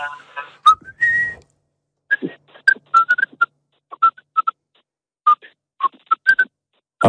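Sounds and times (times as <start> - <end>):
speech: 0.0 - 0.4
person whistling a short choppy tune: 0.6 - 1.4, 2.1 - 4.6, 5.3 - 6.5.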